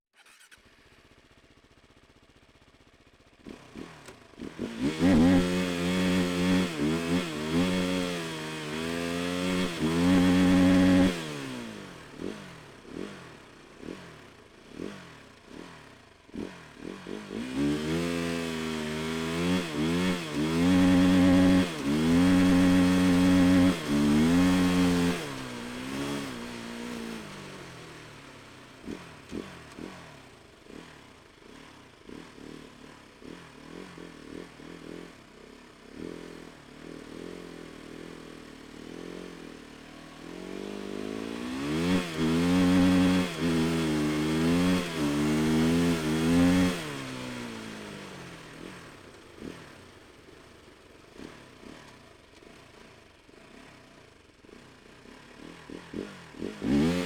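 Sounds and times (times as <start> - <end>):
snow bike engine starting, driving fast and stopping: 0.1 - 57.0.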